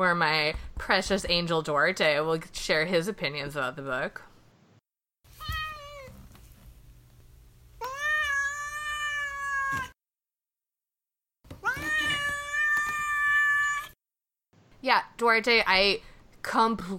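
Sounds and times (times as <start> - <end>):
speech: 0.0 - 4.3, 14.8 - 16.9
cat meowing: 5.4 - 6.2, 7.8 - 10.0, 11.6 - 14.0.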